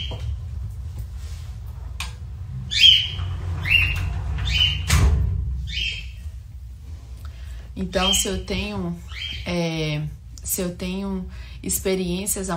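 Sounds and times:
steady low hum: 0.0s - 12.5s
pet bird singing: 2.7s - 4.9s, 5.6s - 6.3s, 9.1s - 9.5s
speech: 7.8s - 12.5s.

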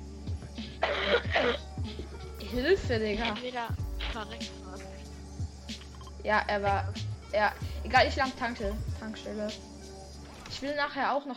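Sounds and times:
harsh raspy coughing: 0.6s - 2.3s
throat-clearing hacks: 0.6s - 5.0s
speech: 2.5s - 4.9s, 6.2s - 9.7s, 10.6s - 11.3s.

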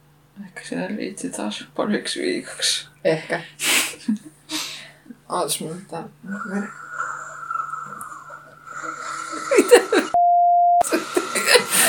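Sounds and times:
speech: 0.7s - 4.3s, 5.3s - 6.8s
whining hum of bathroom renovation through a wall: 6.1s - 10.2s
laughter: 8.9s - 10.2s, 10.8s - 11.8s.

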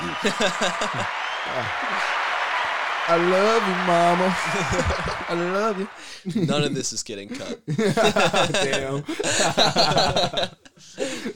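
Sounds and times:
applause: 0.0s - 6.2s
laughter: 0.0s - 11.3s
speech: 0.1s - 2.3s, 3.1s - 11.3s.

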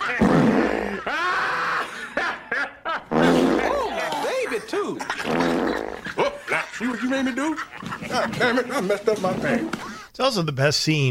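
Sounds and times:
loud fart noises in a movie scene: 0.0s - 1.0s, 3.0s - 4.1s, 5.2s - 6.2s
laughter: 0.0s - 10.1s
speech: 6.8s - 11.0s.

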